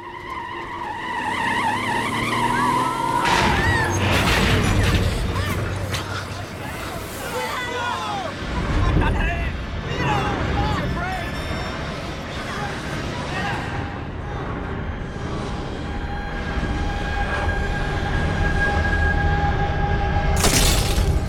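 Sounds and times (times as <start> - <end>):
screeching tires in a vehicle collision: 0.0 - 20.4
lingering rattling debris: 20.4 - 21.2
shattering glass: 20.4 - 21.2.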